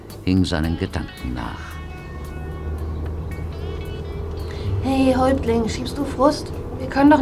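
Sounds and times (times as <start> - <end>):
road noise of a taxi driving: 0.0 - 7.2
taxi engine rumble heard from inside: 0.0 - 7.2
speech: 0.2 - 1.8, 4.8 - 7.2.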